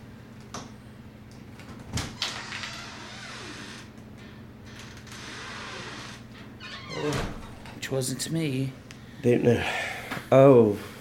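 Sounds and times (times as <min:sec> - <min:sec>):
steady low hum: 0:00.0 - 0:10.9
door creaking open: 0:01.8 - 0:07.8
speech: 0:07.0 - 0:10.9.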